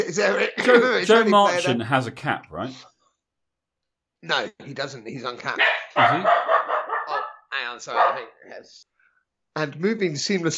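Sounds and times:
speech: 0.1s - 2.9s, 4.2s - 6.6s, 7.6s - 8.9s, 9.6s - 10.5s
pet dog barking and yelping: 5.6s - 8.4s.

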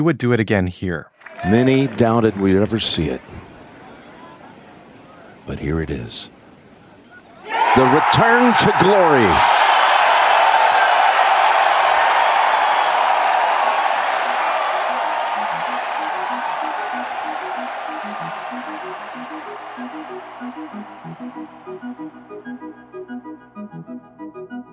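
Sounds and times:
speech: 0.0s - 3.5s, 5.5s - 6.4s, 7.8s - 9.6s
golf crowd applause: 1.2s - 3.3s, 7.6s - 21.6s
large golf crowd cheering: 1.2s - 5.4s, 7.0s - 22.6s.

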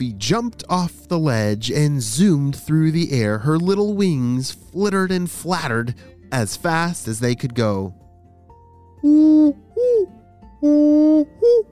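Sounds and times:
speech: 0.0s - 8.0s, 9.0s - 11.6s
great horned owl hooting: 9.0s - 11.6s.

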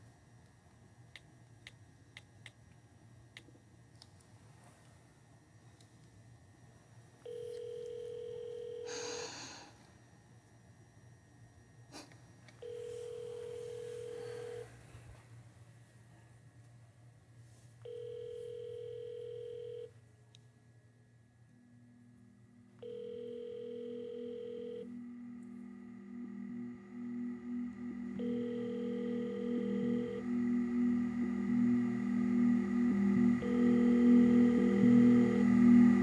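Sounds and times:
low hum: 0.0s - 36.0s
telephone ringback tone while calling: 7.3s - 8.9s, 12.6s - 14.7s, 17.9s - 19.9s, 22.8s - 24.9s, 28.1s - 30.2s, 33.4s - 35.4s.

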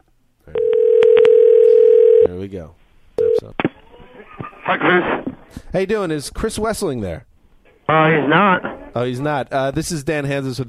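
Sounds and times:
telephone dial tone: 0.6s - 2.3s
speech: 2.4s - 2.8s, 3.4s - 7.3s, 7.9s - 10.6s.

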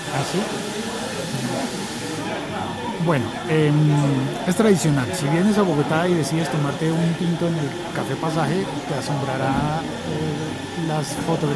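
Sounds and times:
blender-like machine whirring in a café: 0.0s - 11.5s
indistinct voices murmuring in a busy café: 0.0s - 11.5s
speech: 0.1s - 11.5s.

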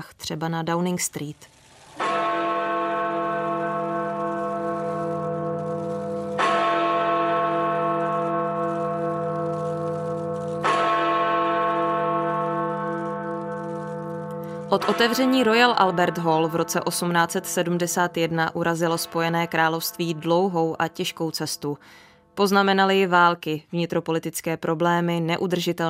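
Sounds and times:
speech: 0.0s - 1.6s, 14.7s - 25.8s
Big Ben clock tower bell striking: 1.5s - 21.3s.

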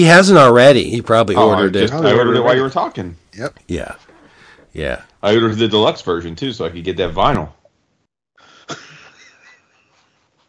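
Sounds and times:
speech: 0.0s - 4.1s, 4.7s - 7.6s, 8.7s - 8.9s
raspy wheezy breath: 4.2s - 4.7s
person coughing: 8.6s - 9.2s.

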